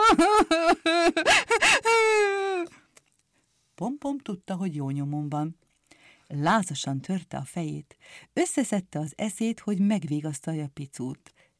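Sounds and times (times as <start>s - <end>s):
voice imitating crying with sobbing wails: 0.0s - 2.8s
speech: 4.2s - 5.6s, 6.3s - 11.4s.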